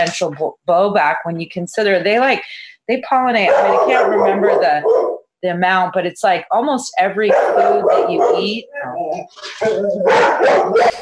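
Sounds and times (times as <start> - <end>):
speech: 0.0 - 11.0
dog barking: 3.5 - 5.3, 7.3 - 8.6, 10.0 - 11.0.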